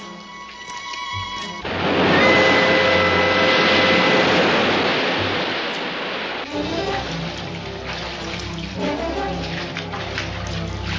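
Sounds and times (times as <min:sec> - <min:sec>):
incoming tide water rushing: 0:00.2 - 0:10.9
rising tide water gurgling and splashing: 0:01.6 - 0:10.9.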